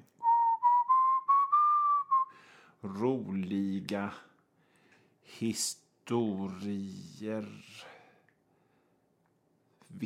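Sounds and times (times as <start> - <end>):
person whistling a tune: 0.2 - 2.4
speech: 2.8 - 4.3, 5.3 - 8.0.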